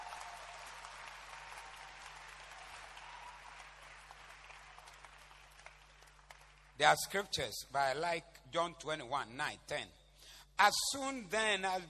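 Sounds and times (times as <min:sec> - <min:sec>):
audience clapping: 0:00.0 - 0:07.1
speech: 0:06.8 - 0:10.0, 0:10.6 - 0:11.8.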